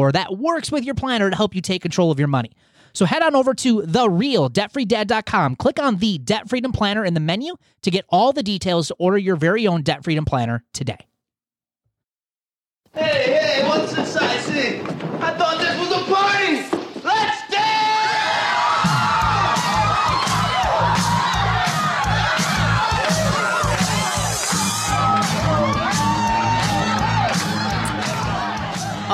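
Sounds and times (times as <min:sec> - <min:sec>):
speech: 0:00.0 - 0:11.1, 0:13.0 - 0:16.3
large crowd cheering and shouting in celebration: 0:13.0 - 0:29.1
thumping rhythmic beat: 0:18.8 - 0:29.1.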